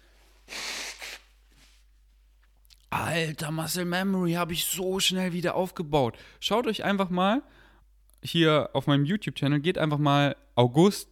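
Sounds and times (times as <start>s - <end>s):
person blowing nose: 0.4s - 1.8s
speech: 3.1s - 7.6s, 8.2s - 11.1s.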